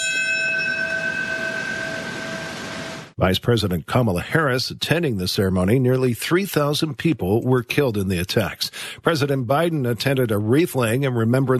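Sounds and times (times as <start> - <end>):
single large commemorative bell ringing: 0.0 - 3.1
speech: 3.2 - 11.5.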